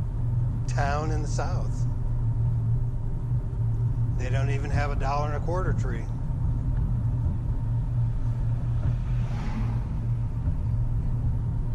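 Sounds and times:
dump truck engine rumbling as it passes: 0.0 - 11.7
speech: 0.8 - 2.0, 4.2 - 6.2.

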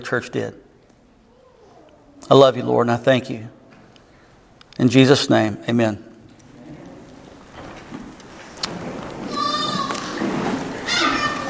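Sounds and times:
speech: 0.0 - 0.6, 2.2 - 3.6, 4.8 - 6.1
steady murmur of noise in a busy room: 0.0 - 5.4, 6.0 - 11.4
babies and young children babbling and squealing: 1.2 - 2.2, 9.3 - 10.2, 10.8 - 11.4
drawn-out high-pitched cries: 9.3 - 10.2, 10.8 - 11.4.

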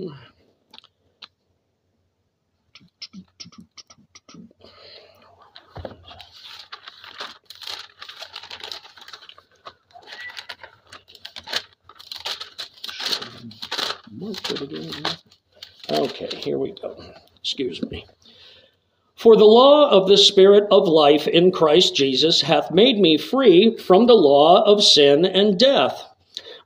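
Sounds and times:
Bible being opened and its pages turned: 5.4 - 17.2
speech: 14.2 - 15.3, 16.2 - 18.2, 19.2 - 26.1.

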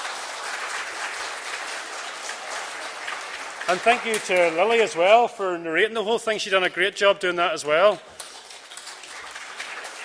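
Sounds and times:
crowd applauding after a performance by boys and girls: 0.0 - 5.2, 8.1 - 10.0
speech: 3.7 - 8.2.

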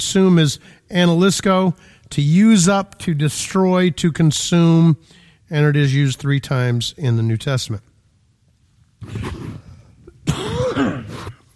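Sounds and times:
speech: 0.0 - 7.9, 9.0 - 9.6
person coughing with a harsh hacking fit: 9.0 - 11.4.

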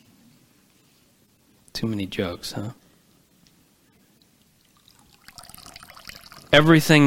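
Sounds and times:
speech: 1.8 - 2.8, 6.5 - 7.0
water dripping from a soaked sponge: 4.4 - 6.6.

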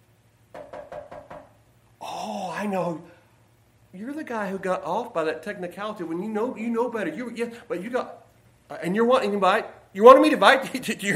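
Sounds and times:
faint low hum: 0.0 - 11.1
knocking on a door: 0.5 - 1.6
speech: 2.3 - 3.1, 3.9 - 11.1.

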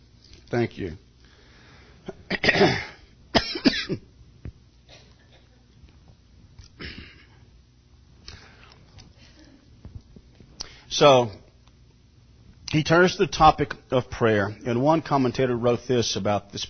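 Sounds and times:
speech: 0.5 - 1.1, 2.4 - 2.9, 11.0 - 11.4, 12.8 - 16.6
person coughing: 2.1 - 4.1, 4.9 - 5.6, 6.8 - 7.4
person clearing throat: 2.2 - 4.1, 6.8 - 7.4.

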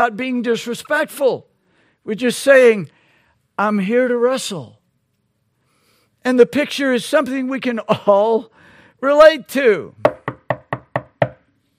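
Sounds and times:
speech: 0.0 - 3.0, 3.6 - 4.8, 6.2 - 10.1
sharp knocks on a wooden door: 10.0 - 11.4.

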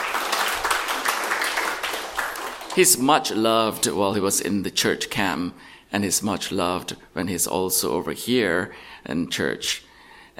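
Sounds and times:
applause in a church: 0.0 - 3.1
speech: 2.8 - 10.3.

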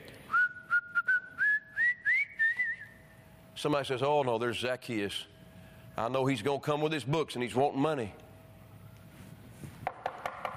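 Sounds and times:
person whistling a cheerful tune: 0.3 - 3.0
speech: 3.6 - 5.3, 6.0 - 8.2.

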